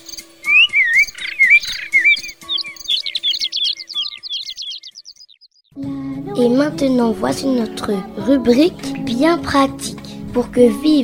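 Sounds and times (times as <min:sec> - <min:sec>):
birds chirping and singing: 0:00.0 - 0:05.8
speech: 0:06.4 - 0:11.0.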